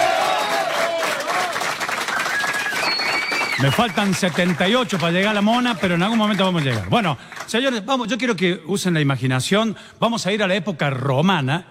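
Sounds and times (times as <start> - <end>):
cheering from a crowd: 0.0 - 6.7
crowd applauding: 0.0 - 7.8
whistles from a crowd: 2.0 - 4.2
speech: 3.6 - 11.6.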